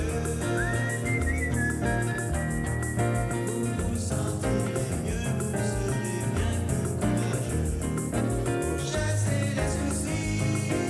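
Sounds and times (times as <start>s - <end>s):
person whistling a cheerful tune: 0.0s - 4.0s
instrumental music backing: 0.0s - 10.8s.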